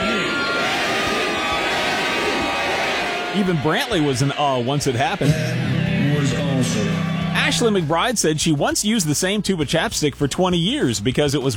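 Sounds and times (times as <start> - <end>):
large concert crowd roaring and shouting: 0.0 - 8.1
speech: 3.4 - 5.8, 6.6 - 11.5.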